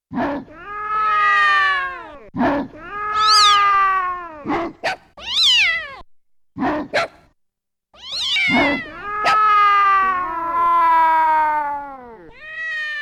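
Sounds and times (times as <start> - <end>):
dog and cat sounds sampled on a sampler: 0.1 - 7.4, 8.0 - 13.0.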